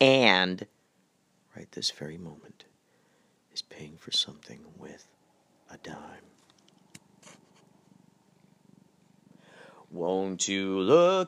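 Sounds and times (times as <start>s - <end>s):
speech: 0.0s - 0.8s, 1.6s - 2.7s, 3.6s - 6.3s, 9.9s - 11.2s
male cat purring while being petted: 7.9s - 9.5s.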